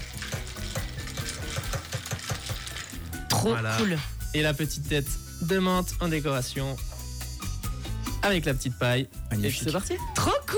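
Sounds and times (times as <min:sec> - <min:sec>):
small spoon stirring an iced ginger beer cocktail: 0:00.0 - 0:03.3
speech: 0:03.4 - 0:06.9, 0:08.2 - 0:10.5.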